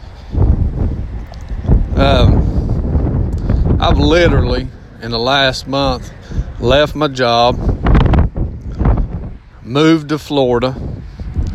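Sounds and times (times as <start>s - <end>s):
strong outdoor wind roaring against the microphone: 0.0s - 11.5s
speech: 2.0s - 2.5s, 3.8s - 7.7s, 9.7s - 11.0s.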